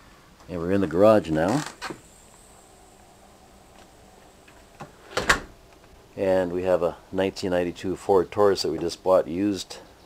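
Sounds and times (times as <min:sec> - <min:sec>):
speech: 0:00.5 - 0:02.0, 0:06.2 - 0:09.9
storm door unlatching and swinging open: 0:04.5 - 0:05.6.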